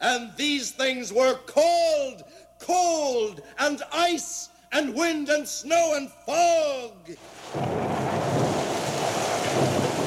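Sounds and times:
speech: 0:00.0 - 0:08.4
loud sustained roll of thunder: 0:07.3 - 0:10.0.

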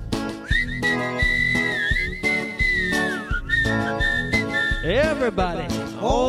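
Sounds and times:
bouncy musical backing with steady rhythmic beats: 0:00.0 - 0:06.2
person whistling a playful tune imitating a walrus whistle: 0:00.4 - 0:05.3
speech: 0:04.9 - 0:06.2.

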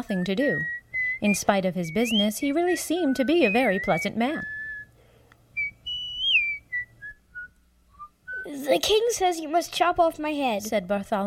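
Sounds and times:
speech: 0:00.0 - 0:04.6, 0:08.6 - 0:11.2
faint low hum: 0:00.0 - 0:11.2
man whistling a tune: 0:00.4 - 0:05.0, 0:05.6 - 0:08.5.

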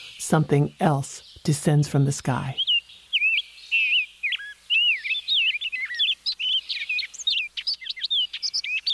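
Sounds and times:
chorus of migrating songbirds singing in oak trees after rain: 0:00.0 - 0:08.9
speech: 0:00.3 - 0:02.6.

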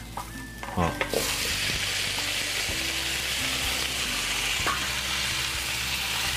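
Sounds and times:
speech: 0:00.8 - 0:01.4
pork sizzling in a hot pan with ginger: 0:00.9 - 0:06.3.

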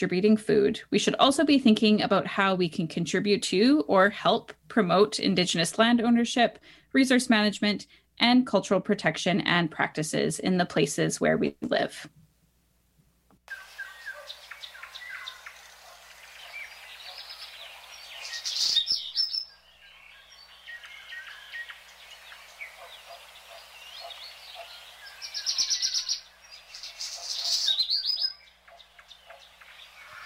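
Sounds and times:
speech: 0:00.0 - 0:12.2
birds singing in spring: 0:13.5 - 0:30.2.

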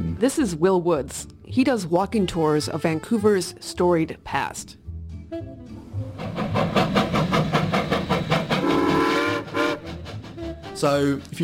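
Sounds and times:
speech: 0:00.2 - 0:05.6, 0:10.8 - 0:11.4
steam locomotive chuffing: 0:06.0 - 0:11.4
steam locomotive whistle blasts: 0:08.6 - 0:10.0.

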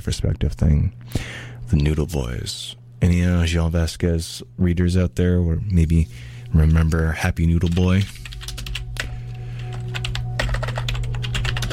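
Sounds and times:
speech: 0:00.0 - 0:08.2
low electrical hum: 0:00.0 - 0:11.7
typing on a computer keyboard: 0:07.6 - 0:11.7.

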